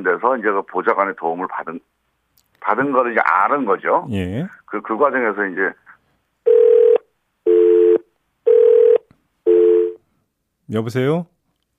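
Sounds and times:
speech: 0.0 - 2.0, 2.6 - 5.8, 10.7 - 11.3
telephone beeps after a call drops: 6.5 - 10.0.

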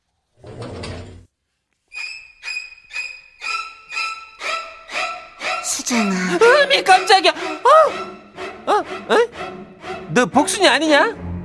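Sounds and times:
sliding paper door opening: 0.4 - 1.3
squeaky scrapes: 1.9 - 8.2
speech: 5.9 - 8.1, 8.7 - 11.2.

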